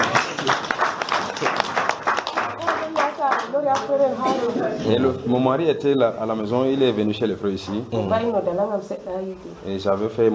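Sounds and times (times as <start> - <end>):
applause at a church gathering: 0.0 - 3.9
speech: 3.7 - 10.3.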